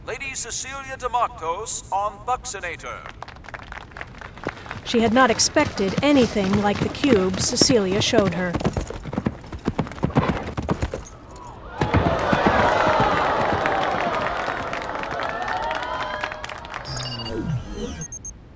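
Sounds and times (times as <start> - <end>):
speech: 0.1 - 3.3, 4.9 - 8.8
horse hooves pounding during a jumping ride: 4.4 - 11.1
crowd cheering and applauding: 12.0 - 16.8.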